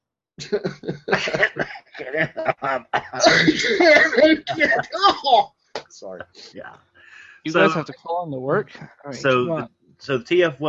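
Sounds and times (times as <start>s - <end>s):
laughter: 0.4s - 5.2s, 7.2s - 7.9s, 8.5s - 10.6s
person in a harsh hacking coughing fit: 0.4s - 5.2s, 7.5s - 7.8s
speech: 0.4s - 10.6s.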